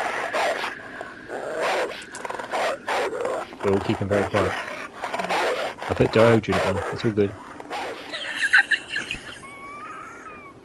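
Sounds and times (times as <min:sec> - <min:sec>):
angry dogs growling and snarling: 0:00.0 - 0:08.1
speech: 0:03.6 - 0:04.7, 0:05.9 - 0:07.4
laughter: 0:08.1 - 0:10.6.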